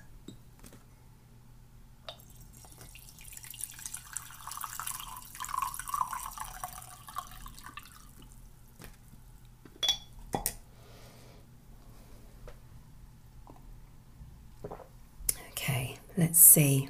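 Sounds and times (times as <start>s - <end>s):
green tea trickling and dripping: 2.1s - 9.0s
spoon clinking against a cup of green tea: 9.8s - 10.5s
speech: 16.2s - 16.8s.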